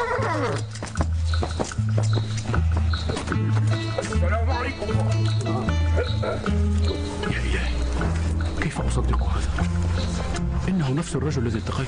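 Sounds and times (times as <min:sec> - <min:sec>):
descending animal cry: 0:00.0 - 0:00.7
horse hooves clopping at an even pace: 0:00.0 - 0:11.8
speech: 0:00.4 - 0:00.8, 0:06.2 - 0:08.2, 0:08.8 - 0:11.8.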